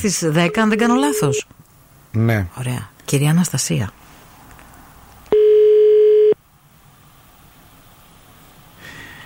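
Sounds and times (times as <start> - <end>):
speech: 0.0 - 4.0
ringback tone on an outgoing phone call: 0.5 - 1.4, 5.3 - 6.4.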